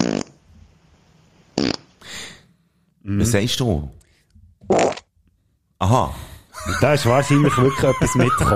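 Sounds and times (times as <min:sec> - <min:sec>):
short dry farts: 0:00.0 - 0:00.4, 0:01.6 - 0:01.9, 0:04.6 - 0:05.1
speech: 0:03.1 - 0:04.0, 0:05.9 - 0:08.5
laughter: 0:06.5 - 0:08.5.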